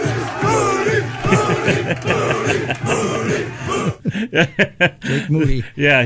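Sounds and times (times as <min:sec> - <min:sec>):
football players shouting: 0:00.0 - 0:04.0
football players cheering and chanting in a locker room after a win: 0:00.0 - 0:04.1
laughter: 0:00.0 - 0:05.8
speech: 0:04.3 - 0:06.0.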